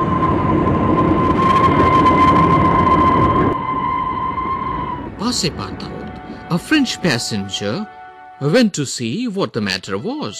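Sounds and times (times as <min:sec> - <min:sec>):
sustained shrill high-pitched train whistle: 0:00.0 - 0:08.6
passenger train rumbling in the Rocky Mountains: 0:00.0 - 0:10.3
speech: 0:05.3 - 0:05.9, 0:06.5 - 0:10.3.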